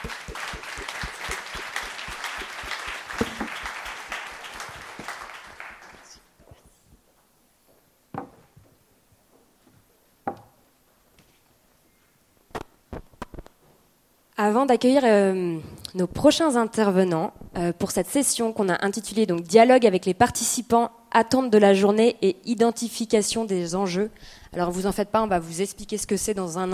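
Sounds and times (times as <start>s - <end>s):
audience applauding speakers at an event: 0.0s - 6.3s
speech: 14.4s - 26.7s.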